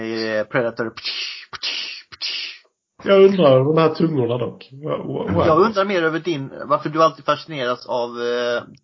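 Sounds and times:
speech: 0.0 - 1.8, 3.0 - 8.8
voice imitating a whip crack: 1.0 - 2.6.

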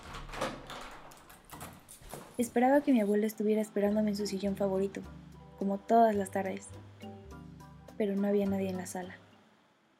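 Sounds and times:
living-room door of a house opening with soft clicks and rattles: 0.0 - 2.4
speech: 2.4 - 6.9, 8.0 - 9.2.

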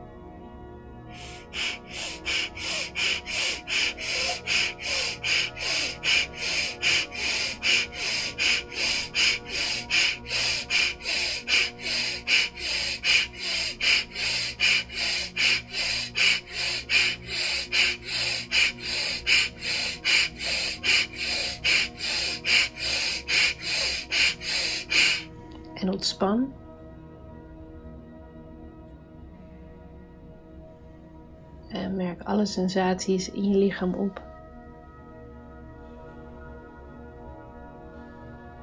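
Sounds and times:
rapid forceful breaths of an energizing breathing exercise: 1.1 - 25.5
speech: 31.8 - 34.3.

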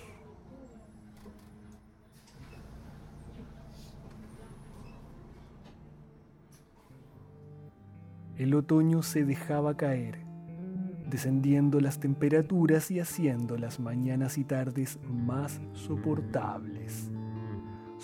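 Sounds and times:
bus engine idling at a stop: 0.0 - 7.6
faint street noise: 0.0 - 8.6
speech: 8.4 - 10.2, 11.1 - 17.2.

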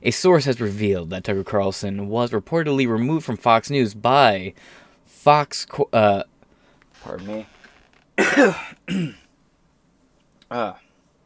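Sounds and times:
speech: 0.0 - 6.3, 7.0 - 7.6, 8.2 - 9.2, 10.5 - 10.8
person clearing throat: 8.2 - 9.3.

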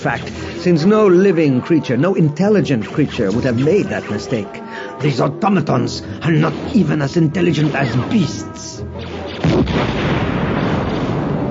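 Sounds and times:
speech: 0.0 - 10.2
explosions blasting the tops off towers in a night battle: 9.0 - 11.4
heavy boom: 9.4 - 11.4.

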